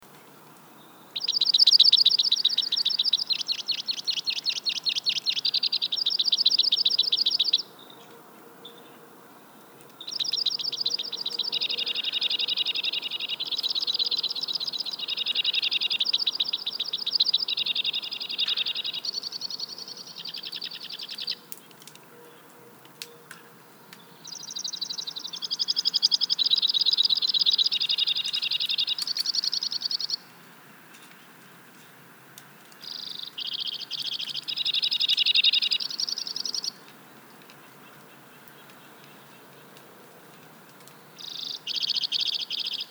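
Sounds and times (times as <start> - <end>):
White-winged Crossbill Loxia leucoptera calling: 1.2 - 7.7, 10.0 - 21.6, 24.2 - 30.3, 32.8 - 36.9, 41.2 - 42.9.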